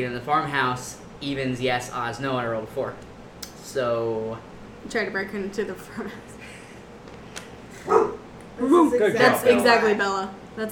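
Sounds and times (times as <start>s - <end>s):
speech: 0.0s - 3.1s, 3.7s - 6.3s, 8.6s - 10.7s
guard dog bark: 7.8s - 8.2s.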